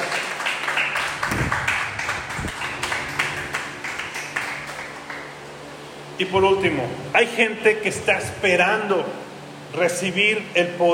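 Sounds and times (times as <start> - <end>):
crowd applauding during a sermon: 0.0 - 5.5
speech: 6.2 - 10.9.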